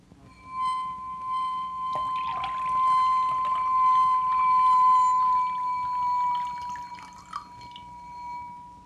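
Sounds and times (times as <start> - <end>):
steady ringing glass goblet tone: 0.0 - 8.8
water poured into a glass goblet: 1.7 - 8.4.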